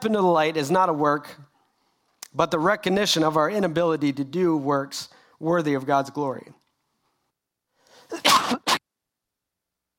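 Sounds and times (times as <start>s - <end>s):
speech: 0.0s - 1.5s, 2.3s - 6.6s, 8.1s - 8.8s
harsh loud cough: 8.0s - 8.8s.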